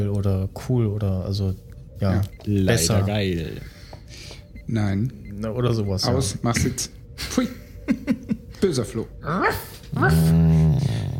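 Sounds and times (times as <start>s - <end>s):
speech: 0.0s - 11.1s
laughter: 7.2s - 8.6s
person imitating a growling dog: 10.0s - 11.1s.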